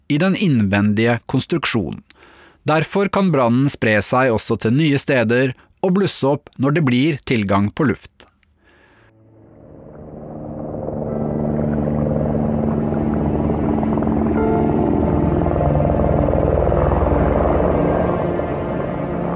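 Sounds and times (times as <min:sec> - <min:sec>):
speech: 0:00.1 - 0:08.2
helicopter flying crew members of a burning ship: 0:09.1 - 0:19.3.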